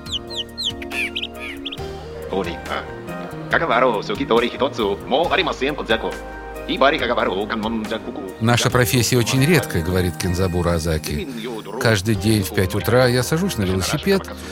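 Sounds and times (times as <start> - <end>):
person whistling bird-like chirps and trills imitating birdsong: 0.0 - 1.9
speech: 2.3 - 14.5.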